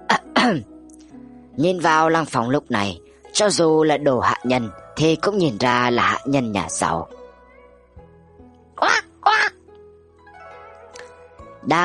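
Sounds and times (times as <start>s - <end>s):
speech: 0.4s - 0.7s, 1.6s - 7.2s, 11.7s - 11.8s
ducks quacking: 8.8s - 9.6s.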